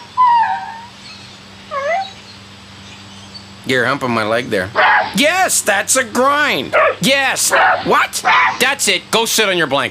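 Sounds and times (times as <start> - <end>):
dog whining and howling: 0.0 - 2.4, 4.8 - 5.2, 6.8 - 8.6
speech: 3.6 - 9.9.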